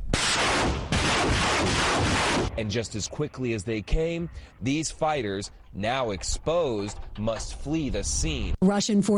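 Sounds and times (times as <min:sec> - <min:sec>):
artillery firing during the war in Ukraine: 0:00.1 - 0:03.0
speech: 0:02.6 - 0:09.1.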